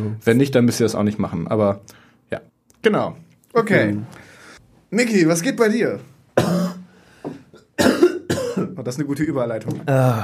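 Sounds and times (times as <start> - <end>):
speech: 0.0 - 4.2, 4.9 - 6.6, 8.8 - 10.2
harsh coughs from a person who is a bit ill: 6.4 - 6.9, 7.6 - 8.8.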